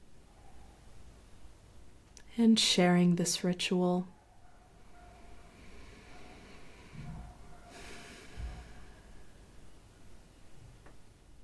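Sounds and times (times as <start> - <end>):
faint low rumbling: 0.9 - 11.4
speech: 2.4 - 4.2
deep breathy exhale during a breathwork exercise: 4.7 - 9.8.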